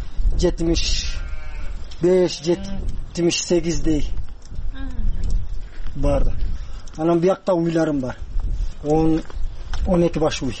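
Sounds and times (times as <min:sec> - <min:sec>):
speech: 0:00.4 - 0:01.2, 0:02.0 - 0:04.2, 0:06.0 - 0:10.5
sheep and goats bleating on a small farm: 0:01.0 - 0:02.9.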